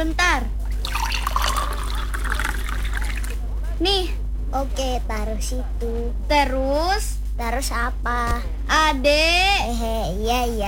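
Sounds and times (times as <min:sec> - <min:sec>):
low hum: 0:00.0 - 0:10.6
water poured into a glass for drinking: 0:00.7 - 0:03.4
speech: 0:03.8 - 0:10.6.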